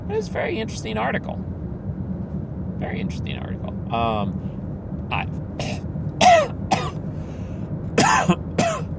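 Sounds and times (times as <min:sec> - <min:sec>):
speech: 0:00.1 - 0:01.6, 0:02.8 - 0:04.5, 0:05.1 - 0:05.8
person clearing throat: 0:05.6 - 0:07.0, 0:08.0 - 0:08.8
person coughing: 0:05.6 - 0:07.0, 0:08.0 - 0:08.8.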